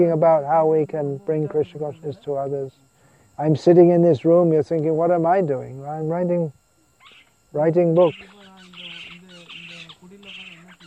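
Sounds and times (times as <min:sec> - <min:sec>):
speech: 0:00.0 - 0:06.6, 0:07.5 - 0:08.4
low constant hum: 0:00.0 - 0:10.8
owls calling: 0:07.0 - 0:10.8.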